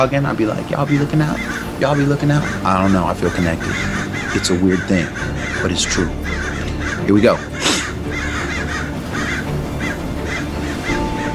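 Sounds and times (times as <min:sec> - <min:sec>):
speech: 0:00.0 - 0:08.2
crows cawing harshly: 0:00.6 - 0:11.3.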